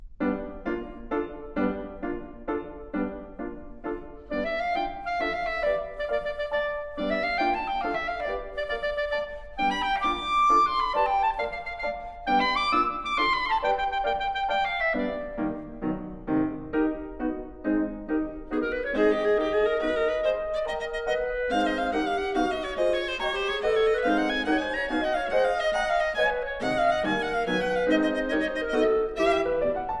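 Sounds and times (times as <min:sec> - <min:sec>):
piano in a trio: 0:00.0 - 0:29.9
viola in a trio: 0:03.9 - 0:17.0, 0:17.6 - 0:29.9
clarinet in a trio: 0:04.2 - 0:17.0, 0:17.6 - 0:29.9.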